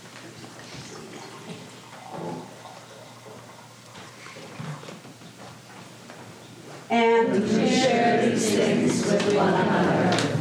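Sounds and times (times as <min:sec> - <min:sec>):
wine being poured into a vessel: 0:00.2 - 0:05.8
speech: 0:06.9 - 0:10.3.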